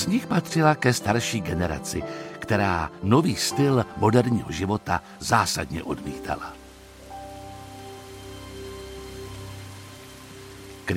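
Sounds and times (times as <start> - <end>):
speech: 0.0 - 6.6
steady rain falling on a surface: 2.9 - 10.9.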